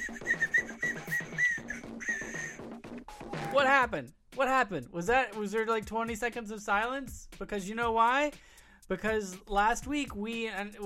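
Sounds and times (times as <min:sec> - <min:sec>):
party whistle being blown: 0:00.0 - 0:03.6
speech: 0:03.6 - 0:10.8.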